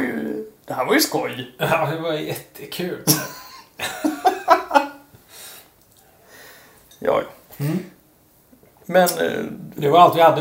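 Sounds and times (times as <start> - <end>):
speech: 0.7 - 3.9, 7.0 - 7.9, 8.9 - 10.3
person coughing: 3.1 - 3.7
laughter: 3.1 - 5.1
soft breathy exhale: 5.3 - 6.8.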